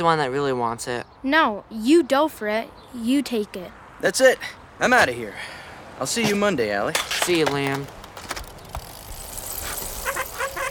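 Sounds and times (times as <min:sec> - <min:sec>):
speech: 0:00.0 - 0:08.0
street noise: 0:00.0 - 0:10.7
vehicle brakes squealing: 0:09.6 - 0:10.7.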